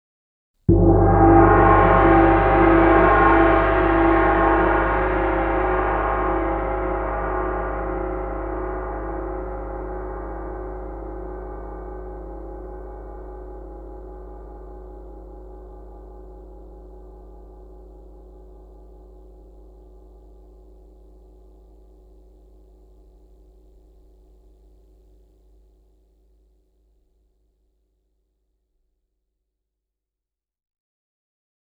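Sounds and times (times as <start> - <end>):
gongs: 0.7 - 19.4.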